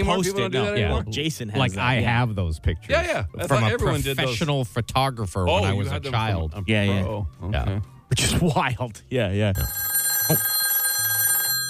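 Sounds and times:
speech: 0.0s - 10.6s
telephone ringing with electronic trill: 9.6s - 11.6s.

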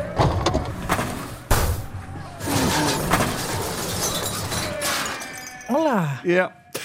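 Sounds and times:
Trabant cars colliding on an ice rink in Yekaterinburg during car-curling: 0.2s - 5.6s
speech: 6.3s - 6.6s.

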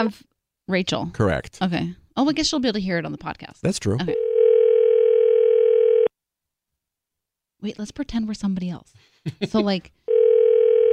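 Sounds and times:
speech: 0.0s - 4.2s, 7.6s - 10.0s
telephone ringing tone of an outgoing call: 4.2s - 6.1s, 10.1s - 10.9s.

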